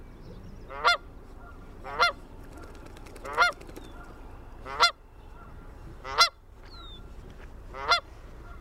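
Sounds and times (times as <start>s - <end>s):
Canada goose honking: 0.7s - 2.2s, 4.6s - 6.4s, 7.7s - 8.5s.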